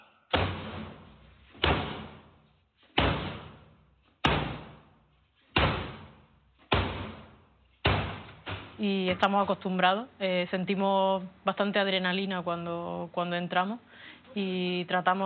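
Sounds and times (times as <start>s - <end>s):
heavy booming blows forcing an apartment door open during a police raid: 0.3s - 4.9s, 5.5s - 8.8s
speech: 8.8s - 15.2s.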